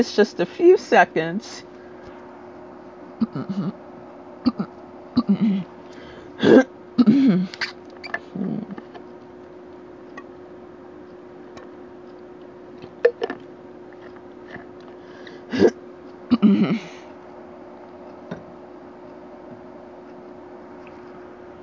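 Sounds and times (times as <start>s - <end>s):
speech: 0.0s - 1.7s, 3.2s - 3.8s, 4.4s - 5.7s, 6.4s - 6.7s
faint steady hum: 0.0s - 21.6s
person clearing throat in short rough bursts: 3.2s - 3.8s, 4.4s - 5.7s, 6.4s - 7.6s, 15.5s - 17.0s.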